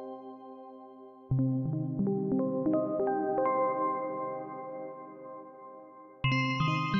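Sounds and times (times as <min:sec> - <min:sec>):
synth pianos: 0:01.3 - 0:06.9.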